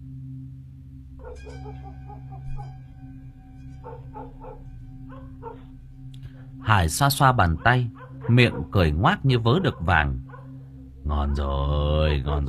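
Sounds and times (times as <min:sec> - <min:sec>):
steady low hum: 0:00.0 - 0:12.4
dogs barking along a road: 0:01.2 - 0:02.9, 0:03.7 - 0:05.8, 0:07.2 - 0:10.6, 0:11.9 - 0:12.4
speech: 0:01.3 - 0:10.3, 0:11.1 - 0:12.4.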